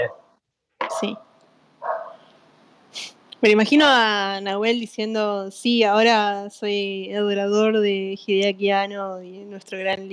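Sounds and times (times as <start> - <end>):
faint hum: 0.8 - 10.1
speech: 1.0 - 1.3, 3.4 - 10.1
dog barking: 1.8 - 2.2.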